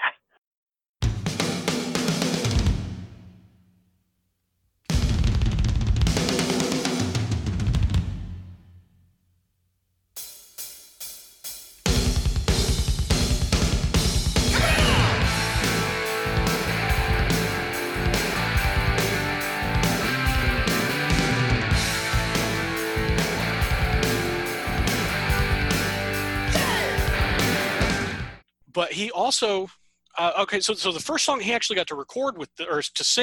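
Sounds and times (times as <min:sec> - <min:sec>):
punchy rock drums: 0:01.0 - 0:03.4, 0:04.9 - 0:08.6, 0:10.2 - 0:28.4
loud full rock band playing: 0:14.2 - 0:28.4
speech: 0:29.0 - 0:33.2.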